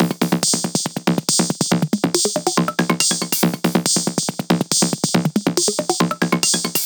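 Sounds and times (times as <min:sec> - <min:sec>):
dubstep percussion loop: 0:00.0 - 0:06.8.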